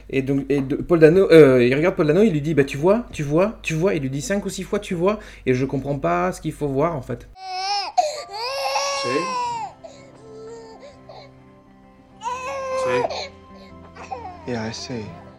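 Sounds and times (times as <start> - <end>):
speech: 0.1 - 8.4, 9.0 - 9.4, 12.9 - 13.2, 14.5 - 15.2
baby wailing and sobbing: 7.4 - 11.5, 12.2 - 15.2.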